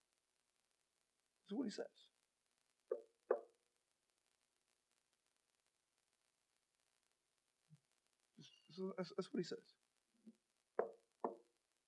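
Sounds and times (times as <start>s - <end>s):
speech: 1.5s - 2.2s, 8.4s - 9.8s
knocking on a door: 10.8s - 11.5s.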